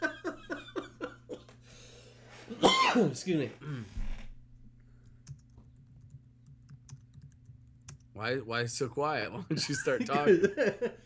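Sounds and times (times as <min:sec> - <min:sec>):
laughter: 0:00.0 - 0:01.4, 0:09.5 - 0:11.0
speech: 0:02.6 - 0:04.0, 0:08.2 - 0:11.0
typing a comment on a computer keyboard: 0:05.2 - 0:08.1.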